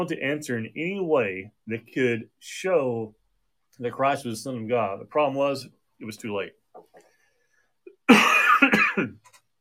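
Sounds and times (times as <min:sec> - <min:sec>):
speech: 0:00.0 - 0:03.2, 0:03.8 - 0:07.1
man coughing: 0:07.9 - 0:09.2.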